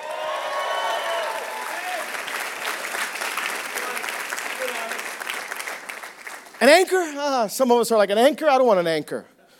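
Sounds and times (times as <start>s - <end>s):
audience shouting praise and cheering: 0.0s - 2.3s
large audience applauding: 0.0s - 7.1s
speech: 6.6s - 9.3s.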